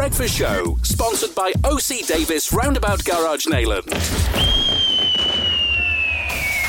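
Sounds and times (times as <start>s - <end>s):
speech: 0.1s - 4.9s
firework whistle dropping in pitch: 4.2s - 6.6s.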